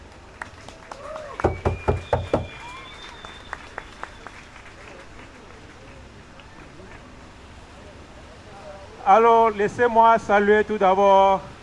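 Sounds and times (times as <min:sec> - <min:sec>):
scattered applause at a public gathering: 0:00.0 - 0:07.2
speech: 0:09.1 - 0:11.5.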